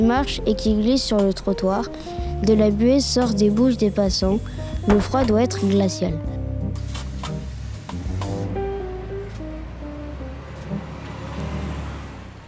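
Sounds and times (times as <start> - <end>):
speech: 0.0 - 6.3
bus engine rumbling while driving through city traffic in snow: 0.0 - 12.4
road and traffic noise in a snowy city: 0.0 - 12.4.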